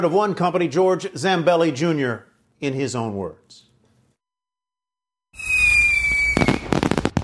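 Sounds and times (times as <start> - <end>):
speech: 0.0 - 3.7
whistle of a launching firework: 5.4 - 7.2.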